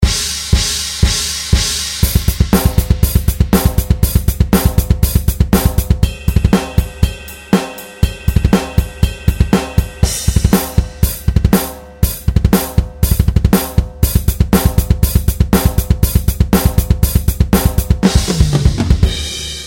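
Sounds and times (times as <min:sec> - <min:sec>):
drum solo: 0:00.0 - 0:19.6.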